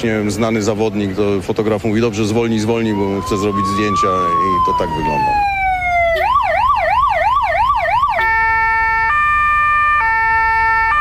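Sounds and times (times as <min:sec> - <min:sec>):
speech: 0:00.0 - 0:06.3
motorcycle ambulance siren at a cycling race: 0:02.8 - 0:11.0.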